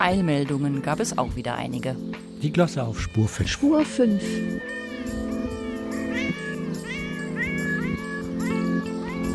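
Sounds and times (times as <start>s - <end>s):
speech: 0.1s - 5.2s
stray cat meowing: 3.0s - 9.3s.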